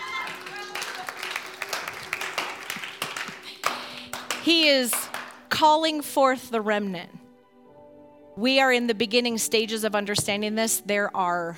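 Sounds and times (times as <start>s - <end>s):
audience applauding: 0.0s - 5.4s
speech: 4.4s - 5.0s, 5.6s - 7.2s, 8.4s - 11.5s.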